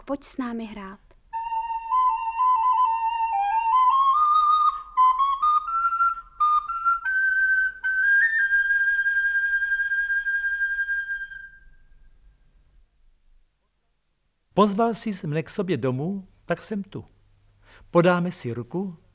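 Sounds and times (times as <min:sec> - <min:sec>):
speech: 0:00.1 - 0:01.0, 0:14.6 - 0:17.1, 0:17.8 - 0:19.1
wooden recorder playing a simple melody: 0:01.4 - 0:11.7.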